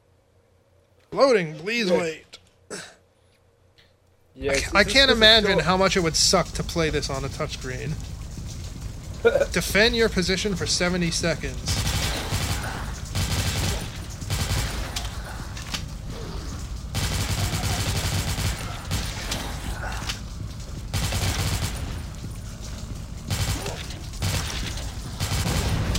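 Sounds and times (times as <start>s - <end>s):
speech: 1.1s - 2.8s, 4.4s - 8.2s, 9.2s - 11.9s
video game gunfire shooting at zombies: 9.6s - 25.9s.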